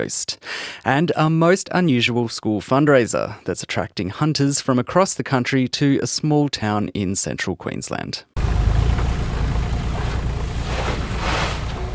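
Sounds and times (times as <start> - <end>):
speech: 0.0 - 8.5
four-wheel drives rolling into a dry dusty racetrack in central Queensland: 8.4 - 11.9.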